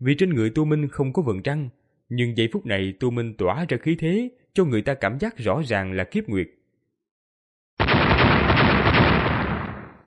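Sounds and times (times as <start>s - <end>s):
speech: 0.0s - 6.6s
rumbling explosion as earth giants shatter: 7.8s - 10.0s.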